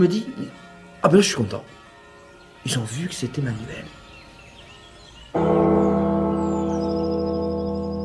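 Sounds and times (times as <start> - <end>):
speech: 0.0 - 0.4, 1.0 - 1.8, 2.6 - 4.0
large church bell struck in a bell tower: 5.3 - 8.0.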